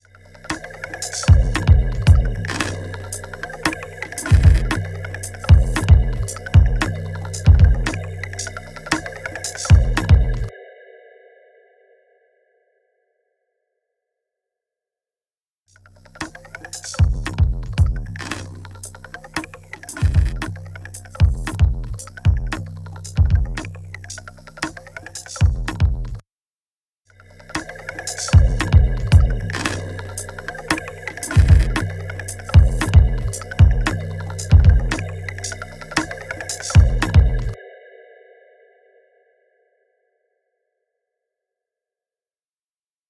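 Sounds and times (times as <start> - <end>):
electronic beat: 0.5 - 10.5, 16.2 - 26.2, 27.6 - 37.6.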